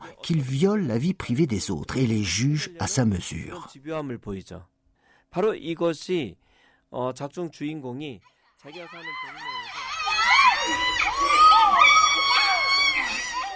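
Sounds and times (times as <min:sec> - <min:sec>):
speech: 0:00.2 - 0:09.8, 0:10.6 - 0:12.3
group of five children shouting agitatedly: 0:08.7 - 0:13.5.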